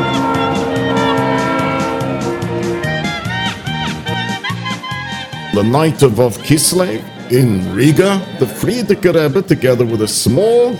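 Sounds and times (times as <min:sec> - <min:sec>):
sustained multi-toned train horn: 0:00.0 - 0:05.3
speech: 0:05.6 - 0:10.7.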